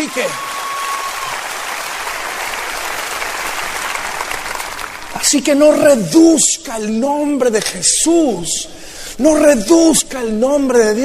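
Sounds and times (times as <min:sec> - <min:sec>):
speech: 0:00.0 - 0:00.5, 0:05.2 - 0:11.0
crowd applause during a religious sermon: 0:00.0 - 0:05.2.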